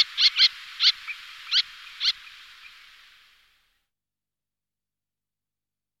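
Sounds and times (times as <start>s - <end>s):
little tern harsh kit calls: 0.0s - 3.0s.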